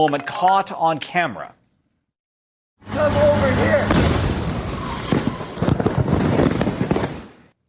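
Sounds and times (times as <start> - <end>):
speech: 0.0 - 1.6, 3.0 - 4.2
rapid barrage of loud explosive bangs at a house: 3.8 - 7.5.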